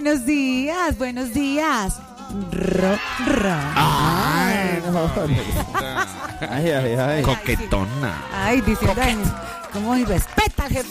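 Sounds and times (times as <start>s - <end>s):
speech: 0.0s - 10.8s
person imitating a cat purring: 2.4s - 3.0s
laughter: 2.7s - 10.1s.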